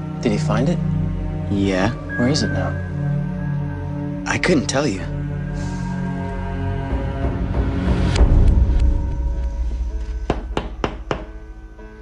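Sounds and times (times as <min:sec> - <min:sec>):
music: 0:00.0 - 0:12.0
speech: 0:00.2 - 0:03.0, 0:04.2 - 0:05.7
man knocking on a door: 0:10.3 - 0:11.4.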